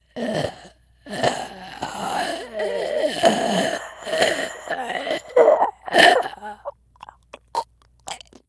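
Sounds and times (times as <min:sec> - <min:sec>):
zombie ambience: 0:00.2 - 0:06.7.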